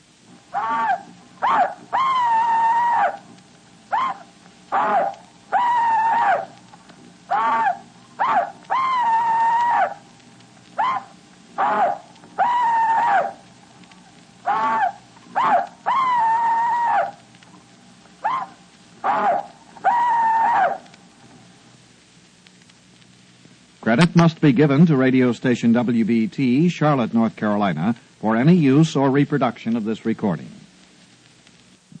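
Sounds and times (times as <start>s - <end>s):
faint hum: 0.0s - 31.9s
elderly Confederate veteran's rebel yell: 0.5s - 3.3s, 3.9s - 6.6s, 7.3s - 10.0s, 10.8s - 13.4s, 14.4s - 17.2s, 18.2s - 20.9s
speech: 24.2s - 30.6s.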